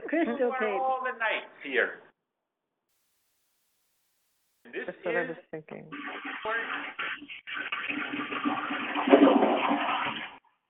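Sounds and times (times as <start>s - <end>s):
speech: 0.1s - 2.1s, 4.7s - 10.3s
toilet flushing picked up through an unmuted phone: 5.9s - 10.4s.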